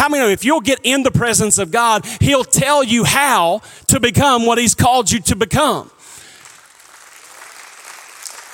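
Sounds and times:
speech: 0:00.0 - 0:06.0
light scattered clapping from an audience: 0:06.2 - 0:08.5.

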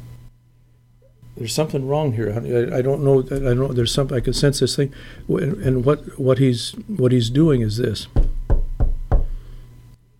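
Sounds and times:
faint hum: 0:00.0 - 0:10.1
speech: 0:01.4 - 0:08.2
knocking on a wooden door: 0:08.2 - 0:09.4.

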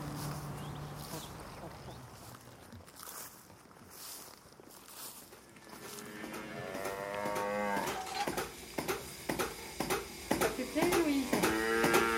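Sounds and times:
cattle mooing: 0:05.8 - 0:08.3, 0:11.3 - 0:12.1
milking machine pulsator clicking on a dairy farm: 0:06.2 - 0:12.1.

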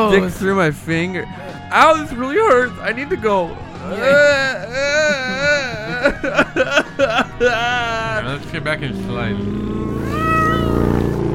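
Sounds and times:
speech: 0:00.1 - 0:10.3
laughter: 0:03.4 - 0:08.8
cat meowing: 0:09.9 - 0:11.2.

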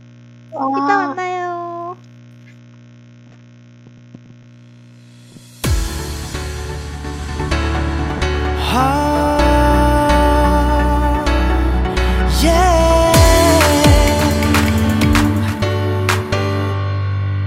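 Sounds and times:
speech: 0:00.5 - 0:01.2
2013 pop song with heavy bass line, bright synths and percussive hits: 0:05.6 - 0:17.3.

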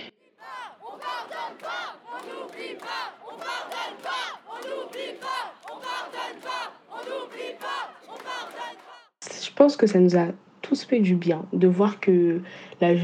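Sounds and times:
protest crowd chanting at a demonstration: 0:00.0 - 0:09.2
speech: 0:09.3 - 0:13.0.

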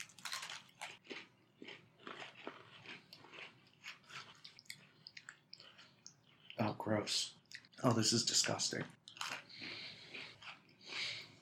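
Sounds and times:
crunchy biting and chewing of a broken Oreo cookie: 0:00.0 - 0:06.7, 0:09.0 - 0:11.4
speech: 0:06.8 - 0:09.0.

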